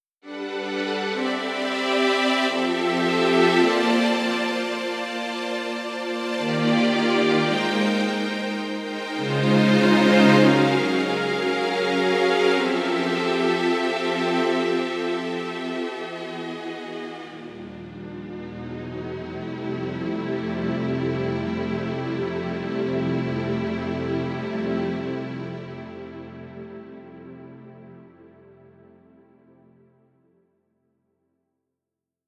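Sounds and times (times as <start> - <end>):
slow strings: 0.3 - 29.1.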